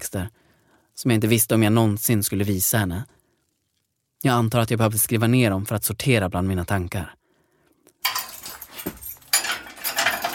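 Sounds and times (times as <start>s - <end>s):
speech: 0.0s - 0.4s, 1.0s - 3.2s, 4.2s - 7.2s
keys jangling and scraping in the lock of a detention cell door: 8.0s - 10.3s.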